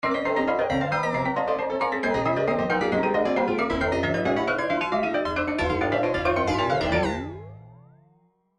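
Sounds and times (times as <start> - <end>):
trance MIDI loops: 0.9 - 7.4.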